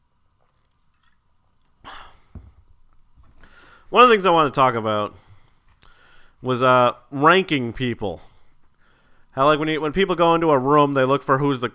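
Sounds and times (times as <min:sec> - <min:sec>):
slurping sip of a drink: 0:00.3 - 0:02.3
speech: 0:03.9 - 0:05.2, 0:06.4 - 0:08.3, 0:09.4 - 0:11.7.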